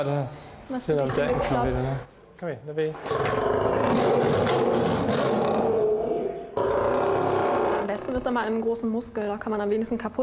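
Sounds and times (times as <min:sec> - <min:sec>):
speech: 0:00.0 - 0:05.4, 0:08.0 - 0:10.2
angry male lion growling and roaring in a lion house: 0:03.0 - 0:08.0.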